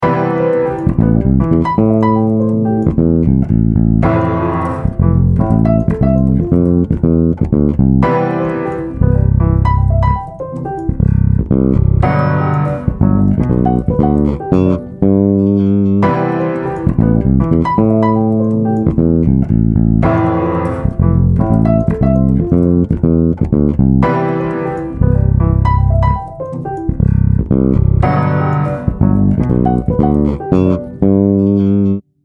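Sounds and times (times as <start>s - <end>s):
bass groove in A minor: 0.0s - 32.0s
keyboard playing chords in A minor: 0.0s - 32.0s.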